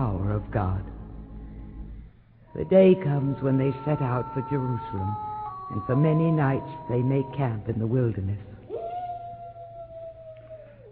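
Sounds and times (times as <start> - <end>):
speech: 0.4 - 1.0, 2.5 - 8.5
jackal howling in the wilderness at night: 2.5 - 10.9.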